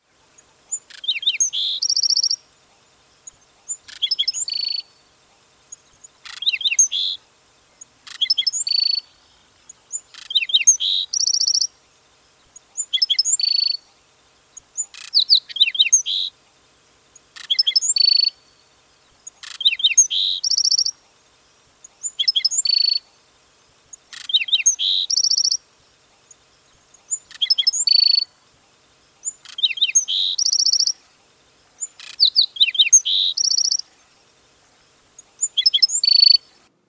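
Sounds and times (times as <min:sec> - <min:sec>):
black-throated sparrow singing: 0:00.0 - 0:36.7.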